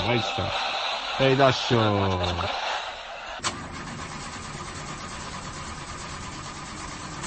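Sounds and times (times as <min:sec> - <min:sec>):
laughter: 0:00.0 - 0:03.4
speech: 0:00.1 - 0:02.7
car engine cranking without starting with suspected clutch plate fault: 0:03.2 - 0:07.2.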